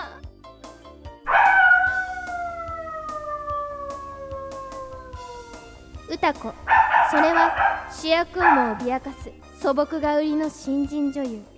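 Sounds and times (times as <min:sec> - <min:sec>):
actress imitating a dog's howl: 0:01.3 - 0:09.2
soft rhythmic musical background: 0:01.3 - 0:09.3
speech: 0:06.2 - 0:11.5.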